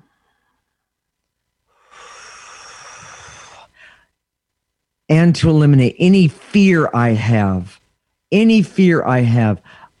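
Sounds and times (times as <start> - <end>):
person taking a long loud breath: 0.0 - 0.9, 1.7 - 4.2, 9.6 - 9.9
speech: 5.1 - 9.9.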